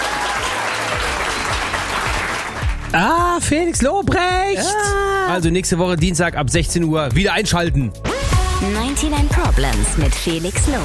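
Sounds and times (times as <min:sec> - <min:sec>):
audience applauding: 0:00.0 - 0:03.4
speech: 0:02.9 - 0:10.8.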